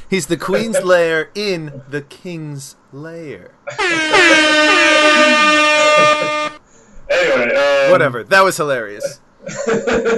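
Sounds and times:
speech: 0.1 - 6.4, 7.2 - 10.1
laughter: 0.4 - 1.0, 3.7 - 6.6, 9.0 - 10.1
air horn blast: 3.7 - 6.6.

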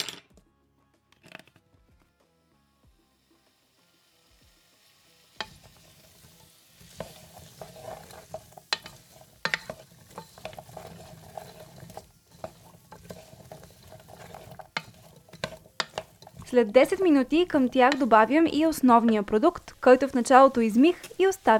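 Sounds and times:
vegetables sizzling and sautéing in hot oil in a pot: 2.8 - 21.5
clinks and scrapes of a spoon stirring in a pot: 5.4 - 19.9
speech: 16.5 - 21.5.

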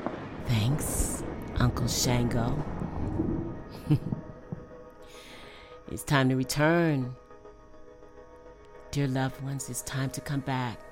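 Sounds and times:
crack of thunder: 0.0 - 4.7
speech: 0.5 - 4.2, 5.9 - 7.2, 8.9 - 10.8.

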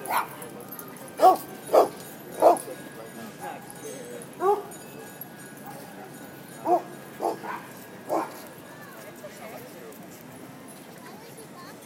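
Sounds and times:
angry wolfdog barking: 0.1 - 0.4, 1.2 - 2.6, 4.4 - 4.7, 6.6 - 8.4.

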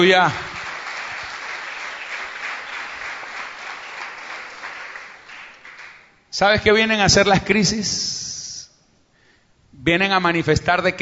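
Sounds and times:
speech: 0.0 - 0.6, 6.4 - 8.2, 9.8 - 11.0
audience applauding: 0.0 - 6.1.

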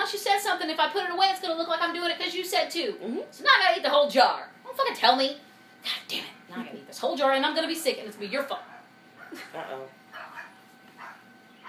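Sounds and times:
speech: 0.1 - 8.7, 9.3 - 10.0
dog barking: 8.5 - 9.5, 10.1 - 11.6.

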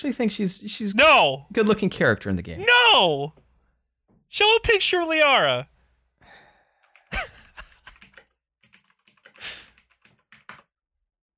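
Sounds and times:
speech: 0.0 - 3.4, 4.3 - 5.7
soft breathy sigh: 6.2 - 6.8, 9.4 - 9.8
clicky keystrokes on a mechanical keyboard: 6.8 - 10.7.

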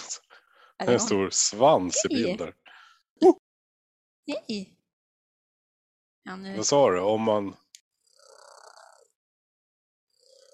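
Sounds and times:
speech: 0.8 - 2.6, 3.2 - 3.4, 4.3 - 4.8, 6.3 - 7.6
laughter: 0.9 - 2.5
cat purring: 8.1 - 9.1, 10.2 - 10.5.

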